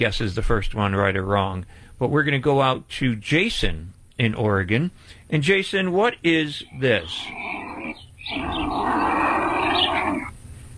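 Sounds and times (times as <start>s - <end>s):
speech: 0.0s - 9.2s
condor harsh raspy hiss: 4.9s - 10.7s.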